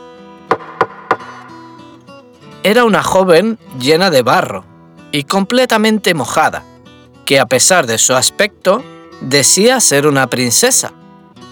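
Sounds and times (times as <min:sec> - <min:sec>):
firm knocks on a palace door: 0:00.5 - 0:01.8
speech: 0:02.6 - 0:06.7, 0:07.3 - 0:11.0.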